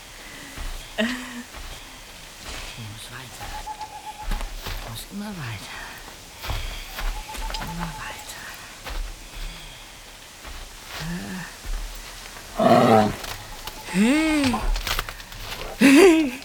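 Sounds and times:
laughter: 0.9 - 1.8, 13.9 - 16.4
speech: 1.0 - 1.3, 5.1 - 5.8, 7.7 - 8.0
bear growling and roaring in a forest: 12.4 - 16.4.

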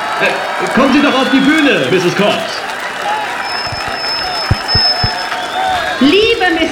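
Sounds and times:
crowd applauding: 0.0 - 6.6
people cheering: 0.0 - 6.6
speech: 0.2 - 2.7, 6.0 - 6.6
low thumps: 3.6 - 5.2.

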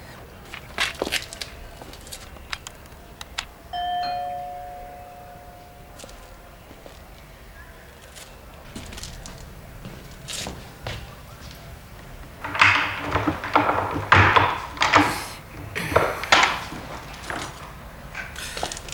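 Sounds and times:
footsteps: 0.0 - 3.6, 4.6 - 18.9
doorbell two-note ding-dong chime: 3.7 - 6.6.

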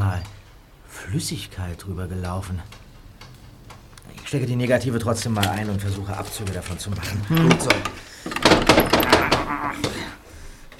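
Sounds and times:
speech: 1.1 - 2.8, 4.3 - 8.1
drawer rattling as it is tugged: 5.1 - 10.0.

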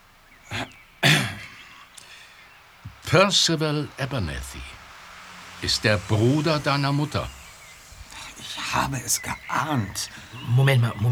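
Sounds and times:
man clearing his throat heavily: 1.0 - 1.7
speech: 3.1 - 4.8, 5.6 - 7.4, 8.7 - 11.1.

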